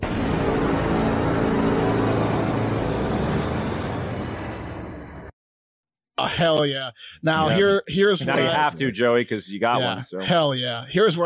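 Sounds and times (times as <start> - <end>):
car engine revving: 0.0 - 5.3
speech: 6.2 - 11.2.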